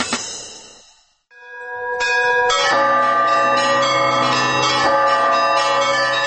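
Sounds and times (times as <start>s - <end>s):
festive church bells in Kirov Russia marking the Velikoretsky religious procession: 1.3s - 6.2s.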